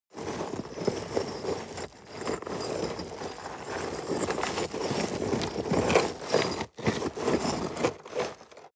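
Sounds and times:
rocks scraping: 0.2 - 8.7.

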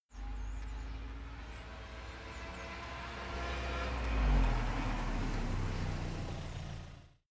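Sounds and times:
car arriving: 0.1 - 7.2.

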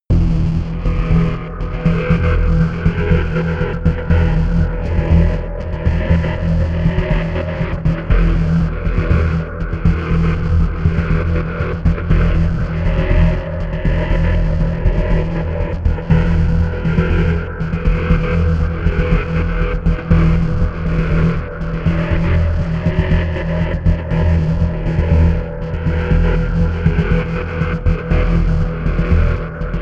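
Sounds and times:
unsettled bass sequence: 0.1 - 29.8.

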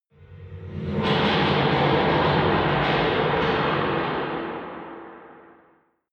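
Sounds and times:
metal rumble: 0.2 - 5.6.

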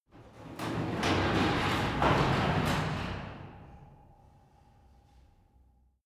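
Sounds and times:
garage door closing heard from interior: 0.1 - 4.5.

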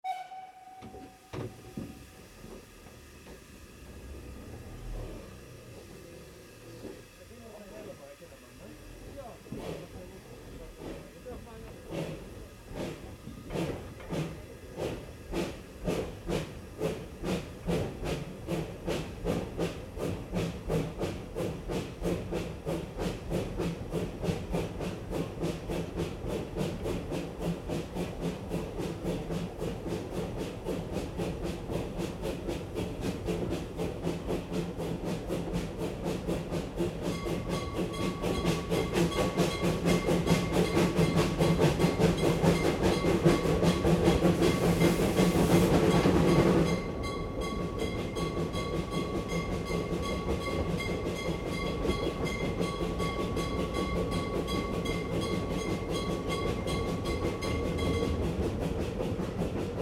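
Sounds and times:
old train cabin interior noise: 0.0 - 59.8.

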